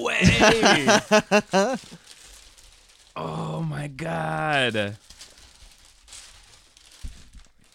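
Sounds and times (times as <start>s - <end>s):
laughter: 0.0s - 1.9s
speech: 0.0s - 2.0s, 3.2s - 5.1s
wrapping paper ripping: 0.4s - 3.2s, 5.0s - 7.7s
wrapping paper crinkling as a gift vinyl LP record is torn open: 0.4s - 3.5s, 4.5s - 7.7s.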